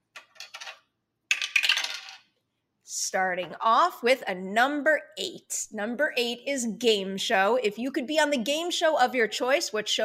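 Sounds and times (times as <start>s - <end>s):
dice clattering down a dice tower: 0.2s - 2.3s
speech: 2.9s - 10.0s.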